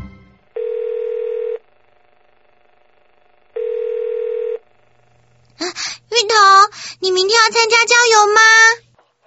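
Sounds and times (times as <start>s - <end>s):
telephone line sounding long steady buzzy tones: 0.5s - 1.7s, 3.5s - 4.7s
speech: 7.5s - 8.8s.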